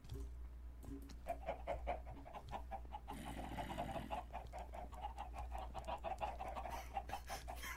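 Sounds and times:
low steady hum: 0.0s - 7.7s
video game chickens clucking and squawking: 1.2s - 7.7s.

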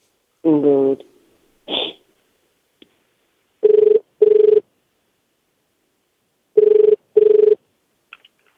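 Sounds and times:
person speaking: 0.4s - 2.1s
telephone call ringback tones: 3.6s - 4.6s, 6.6s - 7.6s.

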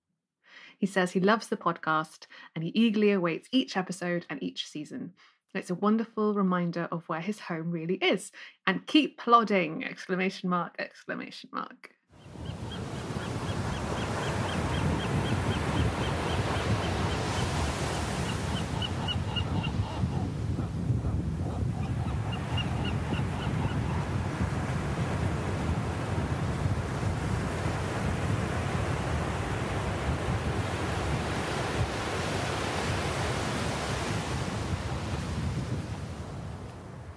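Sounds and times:
speech: 0.8s - 12.5s
western gull calling: 12.4s - 24.2s
Pacific surf washing over sand: 12.5s - 20.9s, 22.5s - 36.3s.

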